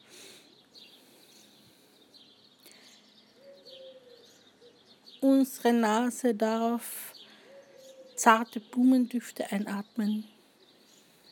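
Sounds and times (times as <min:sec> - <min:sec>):
birds singing and chirping outdoors: 0:00.0 - 0:11.3
dove cooing: 0:03.4 - 0:04.8, 0:07.4 - 0:08.2
speech: 0:05.2 - 0:07.1, 0:08.2 - 0:10.3.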